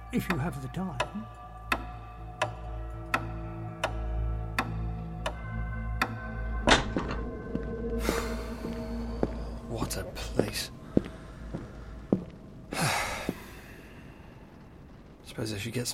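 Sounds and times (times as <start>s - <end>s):
hall clock ticking: 0.0s - 8.6s
low hum: 0.0s - 15.9s
speech: 0.1s - 1.4s, 9.9s - 10.8s, 15.4s - 15.9s.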